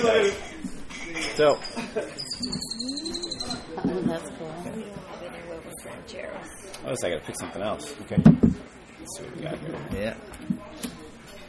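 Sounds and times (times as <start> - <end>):
speech: 0.0 - 0.5, 1.4 - 2.7, 5.9 - 10.8
murmur of voices at breakfast on a beach: 0.0 - 11.4
birds calling on a beach: 1.7 - 3.8
high whistling bird trill: 2.2 - 3.7.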